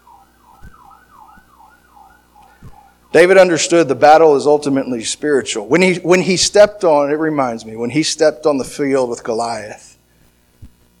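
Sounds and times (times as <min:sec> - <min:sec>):
emergency vehicle sirens wailing faintly: 0:00.0 - 0:03.3
speech: 0:03.1 - 0:09.9.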